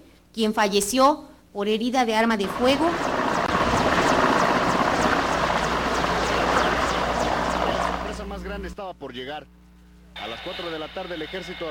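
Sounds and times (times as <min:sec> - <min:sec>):
speech: 0:00.4 - 0:03.2, 0:08.8 - 0:09.6, 0:10.2 - 0:11.7
military helicopter rotor chopping overhead: 0:02.4 - 0:08.8.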